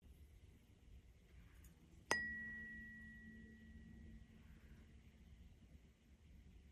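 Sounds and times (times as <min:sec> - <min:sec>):
dark blue third eye chakra tuning fork ringing: 0:02.0 - 0:04.9.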